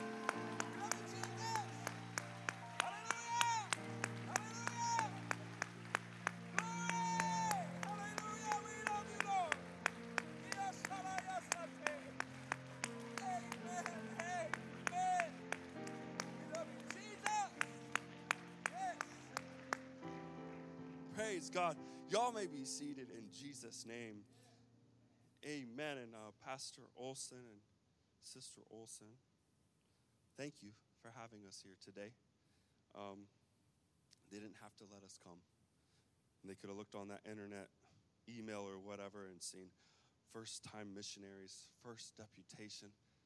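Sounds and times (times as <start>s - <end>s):
crowd clapping hands rhythmically in worship: 0.0s - 22.6s
sustained musical backing: 0.0s - 24.1s
speech: 21.3s - 24.4s, 25.5s - 29.3s, 30.4s - 32.2s, 33.0s - 33.4s, 34.3s - 35.5s, 36.4s - 43.0s.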